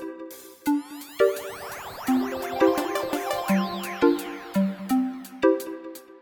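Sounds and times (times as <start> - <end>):
triangle loop: 0.7 - 5.9.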